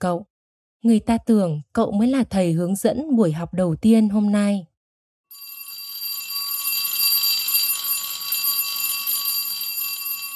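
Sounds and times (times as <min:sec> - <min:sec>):
speech: 0:00.0 - 0:04.7
school bell ringing sharply: 0:05.3 - 0:10.3.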